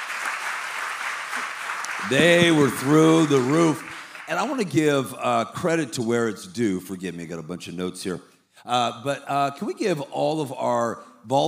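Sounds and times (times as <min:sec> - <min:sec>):
audience applause: 0:00.0 - 0:05.0
speech: 0:02.0 - 0:11.4.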